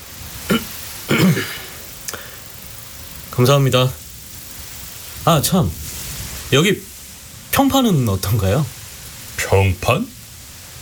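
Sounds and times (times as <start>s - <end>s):
man clearing his throat: 0.5s - 1.8s
speech: 3.4s - 4.0s, 5.2s - 5.8s, 6.5s - 6.9s, 7.6s - 8.8s, 9.5s - 10.2s.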